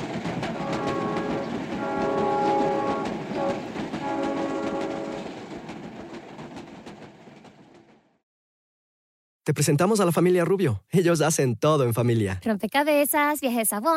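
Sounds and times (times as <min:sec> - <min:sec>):
train rumbling past: 0:00.0 - 0:08.2
train horn blasts: 0:00.5 - 0:05.3
speech: 0:09.5 - 0:13.9.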